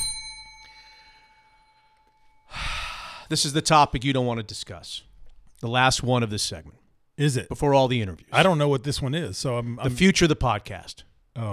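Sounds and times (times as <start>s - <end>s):
bright metallic bell ringing: 0.0s - 2.6s
speech: 3.3s - 11.5s.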